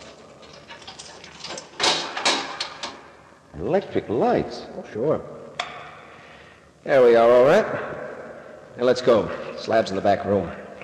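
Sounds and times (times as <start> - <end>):
keys rattling in a Yale lock on a door: 0.0 - 3.0
Yale lock clunking as it is unlocked: 0.4 - 3.1
speech: 3.6 - 5.4, 6.8 - 8.0, 8.8 - 10.6.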